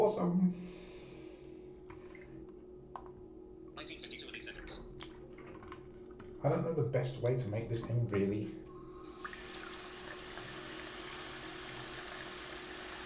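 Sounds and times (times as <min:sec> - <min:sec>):
speech: 0:00.1 - 0:00.8, 0:06.4 - 0:08.7
person speaking quietly: 0:03.8 - 0:04.8
water sloshing and splashing in a sink: 0:04.2 - 0:06.5, 0:09.0 - 0:13.0.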